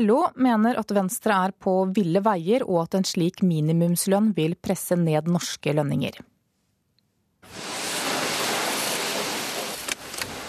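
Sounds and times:
speech: 0:00.0 - 0:06.3
rinse water spraying in a car wash hall in Oslo: 0:07.4 - 0:10.4.

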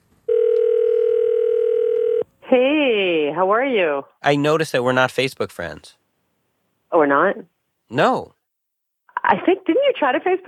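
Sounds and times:
telephone ringing tone of an outgoing call: 0:00.3 - 0:02.2
speech: 0:02.5 - 0:06.0, 0:06.9 - 0:08.4, 0:09.2 - 0:10.4.

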